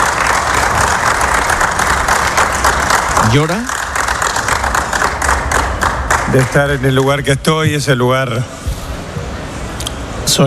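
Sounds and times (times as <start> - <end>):
roomful of people applauding in a stadium press room: 0.0 - 7.6
speech: 3.3 - 3.8, 6.3 - 8.6, 10.3 - 10.4.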